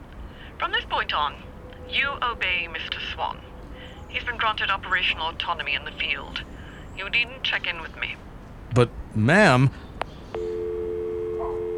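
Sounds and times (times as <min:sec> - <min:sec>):
faint hiss: 0:00.0 - 0:11.7
speech: 0:00.6 - 0:03.5, 0:04.1 - 0:10.5
telephone line click as the line drops: 0:10.4 - 0:11.7.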